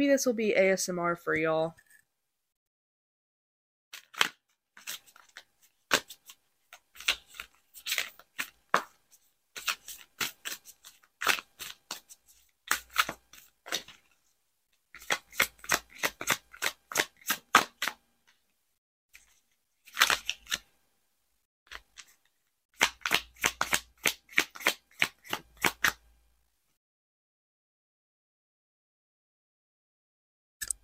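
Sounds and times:
speech: 0.0 - 1.8
deck of tarot cards being shuffled: 4.0 - 14.2, 15.0 - 18.4, 19.2 - 20.7, 21.7 - 26.0.

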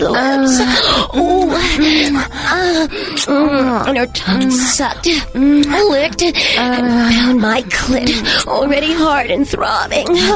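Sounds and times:
speech: 0.0 - 10.3
woman gasping: 0.3 - 8.5, 10.0 - 10.3.

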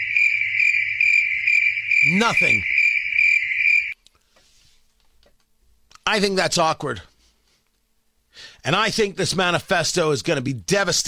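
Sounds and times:
crickets chirping: 0.0 - 4.0
speech: 2.0 - 2.7, 6.1 - 7.1, 8.6 - 11.0.

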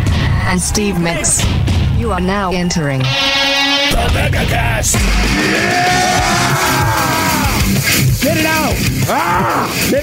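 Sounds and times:
speech: 0.5 - 10.0
group of people yelling together: 5.2 - 7.8, 9.0 - 9.9.

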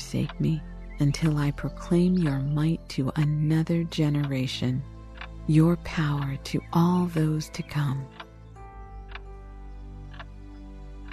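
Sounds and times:
handmade late 1700s Glasgow clock ticking: 0.0 - 9.4, 10.1 - 10.3
speech: 0.1 - 4.9, 5.5 - 8.2.

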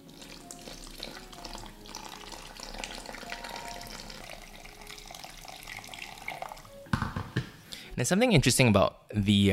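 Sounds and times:
hot water pouring into a mixing bowl of pancake dough mixture: 0.0 - 6.8
speech: 8.0 - 9.5.

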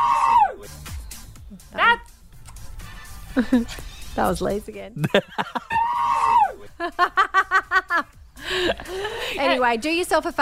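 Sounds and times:
goat screaming: 0.0 - 0.6, 5.7 - 6.6
laughter: 3.3 - 3.8, 5.0 - 6.0, 6.6 - 9.6
speech: 3.4 - 5.8, 6.8 - 10.4.

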